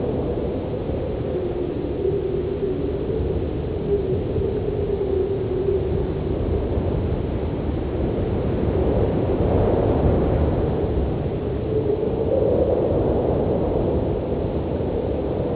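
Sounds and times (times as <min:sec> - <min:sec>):
wind at a mine: 0:00.0 - 0:15.5.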